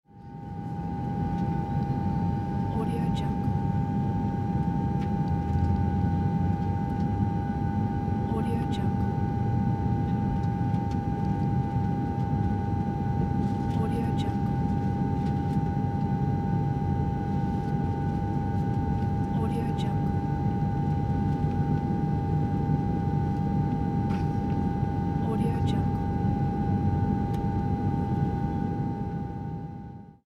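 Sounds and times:
aircraft cabin ambience: 0.1s - 30.2s.

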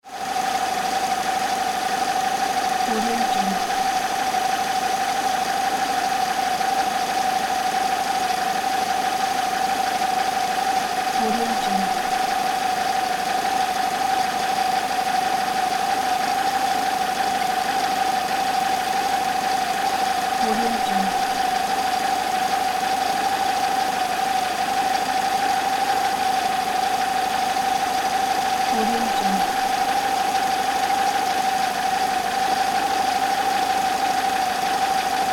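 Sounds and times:
car engine idling: 0.2s - 35.3s.

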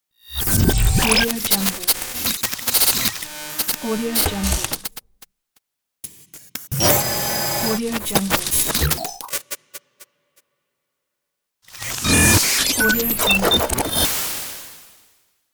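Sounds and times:
digital distortion glitch: 0.3s - 4.9s, 6.7s - 9.5s, 11.7s - 14.1s.

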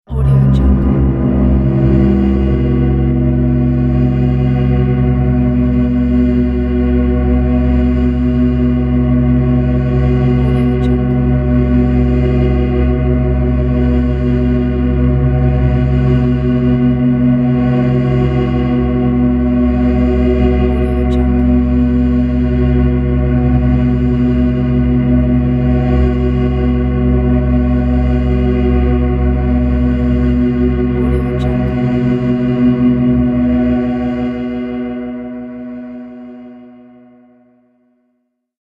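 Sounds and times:
drone: 0.1s - 37.8s.

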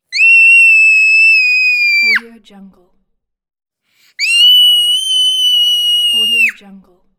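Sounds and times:
child screaming: 0.1s - 2.2s, 4.2s - 6.6s.

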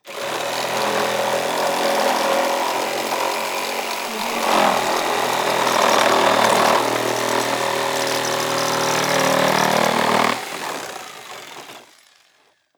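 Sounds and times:
sabre saw cutting old wood: 0.0s - 12.5s.

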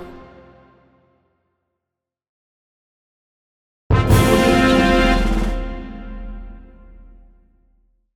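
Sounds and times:
military fanfare: 3.9s - 7.3s.

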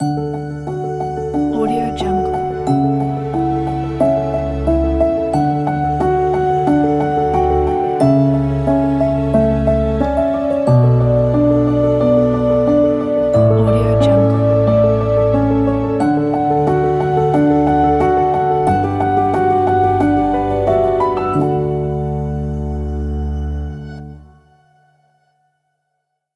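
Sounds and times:
beautiful piano logo jingle: 0.0s - 24.5s.

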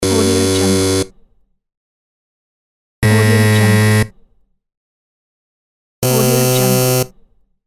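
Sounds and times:
game show fail buzzer: 0.0s - 1.1s, 3.0s - 4.1s, 6.0s - 7.1s.

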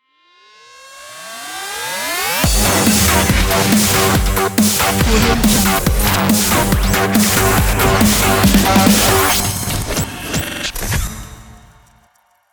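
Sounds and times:
dubstep glitch logo: 2.4s - 11.7s.

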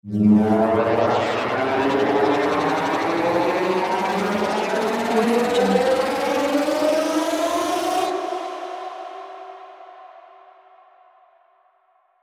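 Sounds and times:
space engine accelerating: 0.1s - 8.1s.

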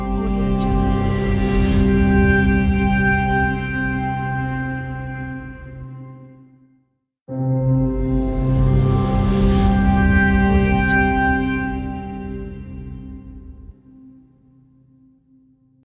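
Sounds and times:
ambient shimmer logo: 0.1s - 4.4s, 7.9s - 13.7s.

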